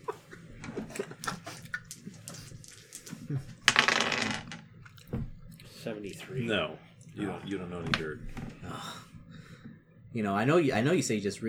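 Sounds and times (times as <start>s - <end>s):
percentile dice clattering across a tabletop: 1.3s - 4.7s
speech: 5.8s - 9.1s, 10.1s - 11.4s.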